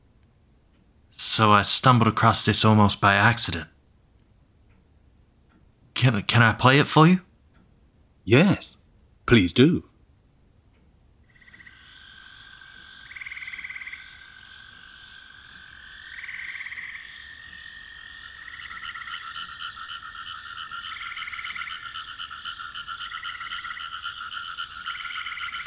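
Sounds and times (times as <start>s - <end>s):
speech: 1.4s - 3.8s, 6.0s - 7.3s, 8.3s - 9.9s
chorus of frogs croaking: 11.2s - 25.6s.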